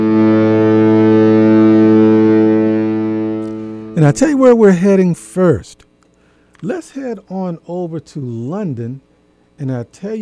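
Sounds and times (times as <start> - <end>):
cruise ship horn signalling departure: 0.0 - 4.8
speech: 4.0 - 5.8, 6.6 - 10.2.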